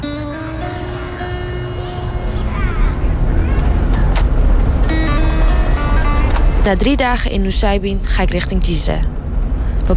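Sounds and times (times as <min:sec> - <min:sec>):
car engine and road rumble driving through countryside: 0:00.0 - 0:09.9
wind buffeting a moving car: 0:00.0 - 0:09.9
faint voices murmuring: 0:00.6 - 0:06.6
speech: 0:06.6 - 0:09.2.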